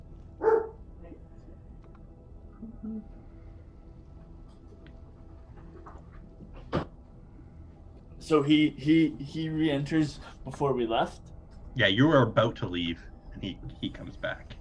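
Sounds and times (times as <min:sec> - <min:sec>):
dog barking: 0:00.4 - 0:00.8
speech: 0:02.8 - 0:03.3, 0:08.3 - 0:14.6.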